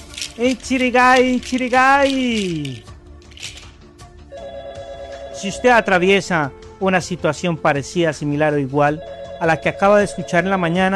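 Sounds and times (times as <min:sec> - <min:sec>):
speech: 0:00.4 - 0:02.9, 0:05.4 - 0:10.9
telephone ringing for an incoming call: 0:04.3 - 0:06.2, 0:09.0 - 0:10.9.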